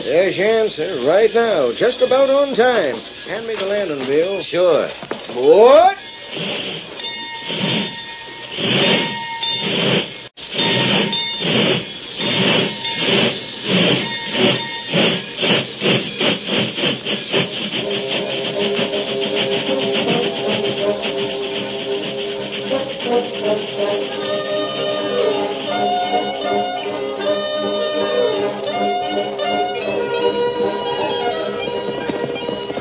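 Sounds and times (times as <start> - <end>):
speech: 0.0 - 8.0, 8.6 - 10.1
steam locomotive hissing and chuffing while pulling away: 0.0 - 32.7.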